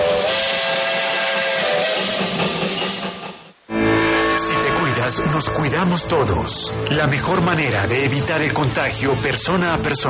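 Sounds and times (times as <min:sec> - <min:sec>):
steam train whistle: 0:00.0 - 0:05.6
speech: 0:05.1 - 0:10.0.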